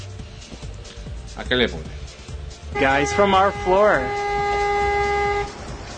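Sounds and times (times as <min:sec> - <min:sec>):
speech: 0:01.5 - 0:02.0, 0:02.8 - 0:04.2
car alarm blaring: 0:02.8 - 0:05.6.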